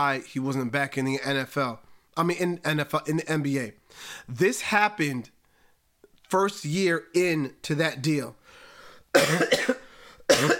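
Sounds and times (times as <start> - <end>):
speech: 0.0 - 5.4, 6.3 - 8.4, 9.2 - 10.5
person coughing: 9.1 - 10.5.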